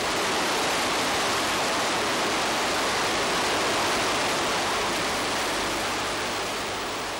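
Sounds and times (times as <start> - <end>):
river water rushing over rapids: 0.0 - 7.1.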